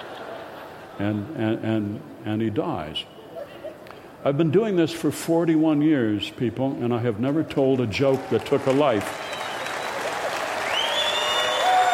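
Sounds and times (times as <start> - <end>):
speech: 1.0 - 3.2, 4.2 - 9.4
audience applause at a stand-up comedy show: 8.1 - 11.9.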